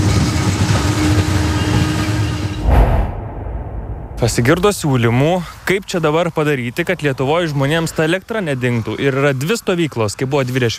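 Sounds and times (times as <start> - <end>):
small train arriving with rumble and rattling clatter: 0.0 - 2.6
heavy low thump: 2.6 - 5.3
speech: 4.2 - 10.7.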